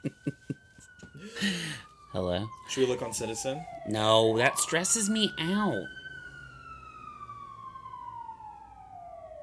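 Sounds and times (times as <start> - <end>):
emergency vehicle siren: 0.0 - 9.4
low rumble of traffic: 0.0 - 9.4
speech: 1.4 - 6.0.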